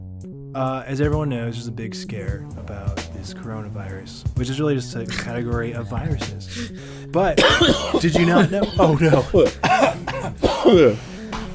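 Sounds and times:
speech: 0.5 - 11.1
person clearing throat: 5.1 - 6.3, 7.4 - 11.0
person coughing: 5.1 - 6.7, 7.4 - 11.0.

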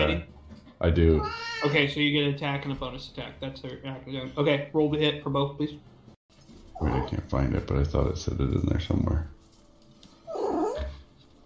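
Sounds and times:
speech: 0.8 - 5.9, 6.8 - 9.4
cat meowing: 1.2 - 1.8.

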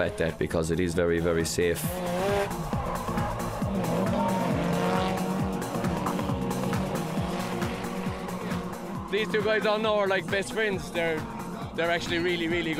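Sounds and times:
speech: 0.0 - 2.6, 9.1 - 12.7
drifting car engine revving hard: 1.7 - 12.7
drifting car tires squealing: 1.8 - 11.6.

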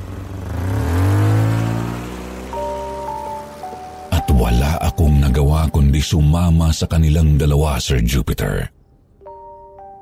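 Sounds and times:
van engine revving on a test drive: 0.0 - 6.7
speech: 5.5 - 8.8.

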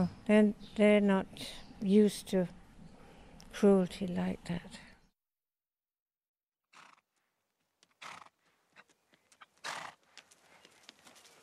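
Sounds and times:
speech: 0.0 - 2.6, 3.6 - 4.9
steeplechase racehorse snorting: 6.7 - 7.0, 8.0 - 8.4, 9.6 - 10.0
steeplechase racehorse hooves clopping: 6.8 - 11.4
steeplechase racehorse whinny: 8.0 - 8.3.

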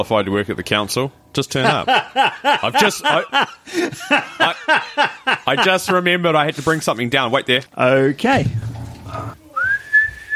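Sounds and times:
speech: 0.0 - 9.4
laughter: 1.6 - 6.2
person whistling a sustained note: 9.6 - 10.3.

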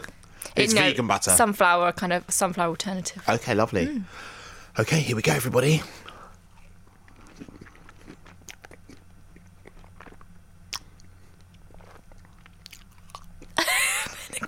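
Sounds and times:
speech: 0.6 - 6.0
wet chewing of a soft vegan lemon curd dessert: 6.0 - 13.6.

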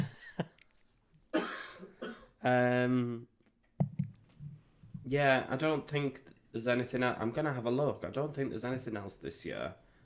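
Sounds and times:
person coughing: 1.3 - 2.4
speech: 2.4 - 3.3, 5.1 - 9.8.

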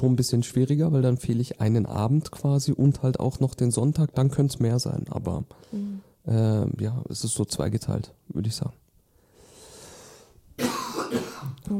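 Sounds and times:
speech: 0.0 - 8.8, 10.6 - 11.7
soft breathy exhale: 5.6 - 6.2, 9.2 - 10.4
person coughing harshly: 10.6 - 11.6
throat clearing: 10.6 - 11.6.

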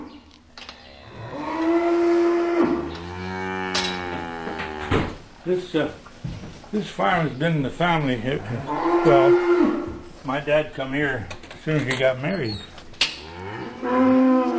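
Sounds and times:
cattle lowing in an old farm barn: 0.7 - 5.0, 8.4 - 10.0, 13.2 - 14.5
speech: 5.5 - 6.0, 6.7 - 9.7, 10.3 - 12.7.

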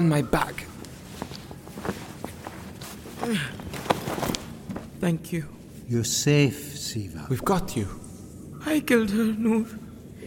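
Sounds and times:
speech: 0.0 - 0.7, 3.3 - 3.6, 5.0 - 8.0, 8.6 - 9.8
low noise: 0.0 - 10.2
soft footsteps of a person walking: 0.4 - 5.0.

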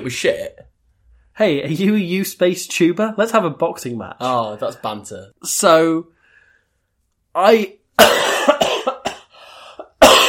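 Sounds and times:
speech: 0.0 - 0.6, 1.4 - 6.2, 7.4 - 8.6
ill person coughing harshly: 8.0 - 10.2.

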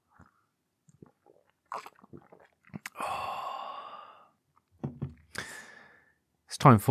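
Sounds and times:
person sipping a drink: 0.2 - 4.4
small gulps and lip smacks: 0.9 - 3.0
long satisfied exhale: 2.9 - 4.4, 5.3 - 6.2.

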